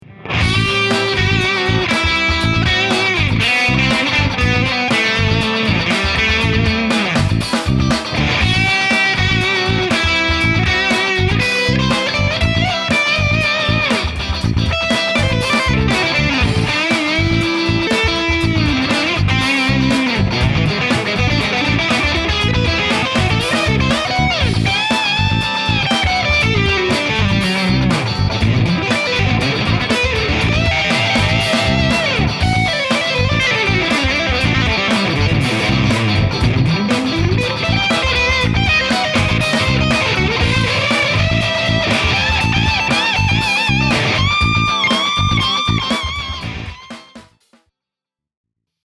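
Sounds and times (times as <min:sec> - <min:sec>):
musical solo: 0:00.1 - 0:47.2.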